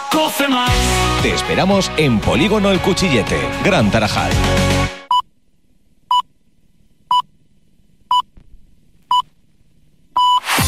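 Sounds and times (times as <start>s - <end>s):
speech: 0.2s - 5.0s
radio hourly time signal pips: 10.2s - 10.5s.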